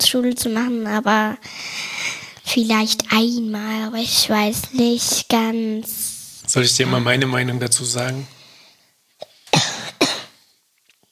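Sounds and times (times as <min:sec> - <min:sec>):
speech: 0:00.0 - 0:01.9, 0:02.5 - 0:08.4
person with a slight cough coughing: 0:09.2 - 0:10.4.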